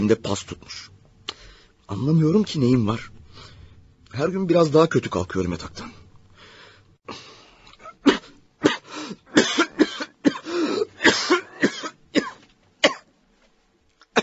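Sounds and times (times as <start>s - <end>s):
speech: 0.0s - 1.0s, 1.9s - 3.5s, 4.1s - 6.0s, 7.1s - 7.3s
man coughing in a long harsh fit: 7.8s - 13.1s.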